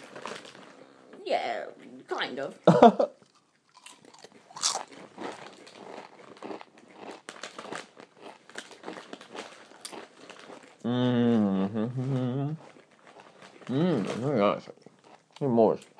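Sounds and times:
potato crisps being chewed: 0:00.0 - 0:01.0, 0:03.2 - 0:10.8, 0:12.1 - 0:15.9
speech: 0:01.3 - 0:03.2.

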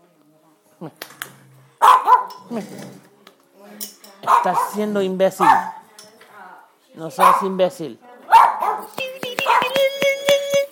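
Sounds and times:
speech: 0:00.8 - 0:01.2, 0:02.5 - 0:03.1, 0:03.8 - 0:05.8, 0:07.0 - 0:08.1
dog barking: 0:01.8 - 0:02.4, 0:04.2 - 0:05.9, 0:07.2 - 0:07.6, 0:08.3 - 0:09.8.

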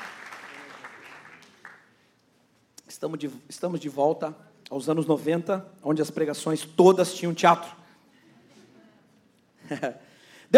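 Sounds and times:
audience applause for volunteer actors: 0:00.0 - 0:01.9
speech: 0:03.0 - 0:07.8, 0:09.7 - 0:10.5.

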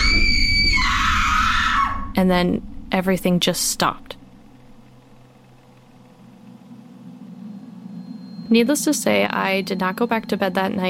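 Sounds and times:
girl's loud high-pitched blood-curdling scream: 0:00.0 - 0:02.1
speech: 0:02.2 - 0:04.2, 0:08.5 - 0:10.8.

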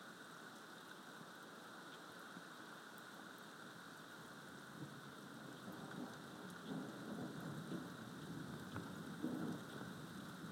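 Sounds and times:
steady rain hissing and pattering in a thunderstorm: 0:00.0 - 0:10.5
low rumbling thunder: 0:05.6 - 0:10.5.

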